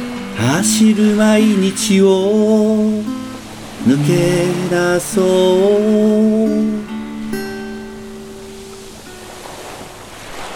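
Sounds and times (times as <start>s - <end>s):
sustained musical notes: 0.0s - 9.5s
ocean surf breaking on a beach: 0.0s - 10.5s
speech: 0.4s - 3.2s, 3.8s - 6.9s.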